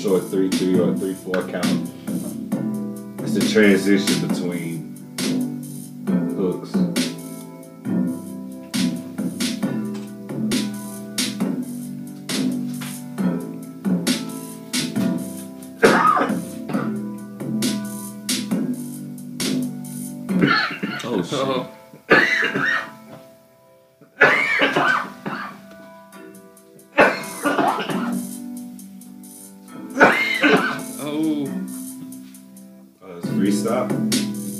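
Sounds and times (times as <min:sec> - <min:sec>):
speech: 0:00.0 - 0:02.3, 0:03.3 - 0:04.9
humming musical backing with sustained tones: 0:00.0 - 0:34.5
person coughing: 0:15.8 - 0:17.0, 0:20.4 - 0:23.0, 0:24.2 - 0:25.6, 0:27.0 - 0:28.2, 0:29.9 - 0:31.4
throat clearing: 0:15.8 - 0:17.0, 0:20.4 - 0:23.0, 0:27.0 - 0:28.2, 0:29.8 - 0:31.4.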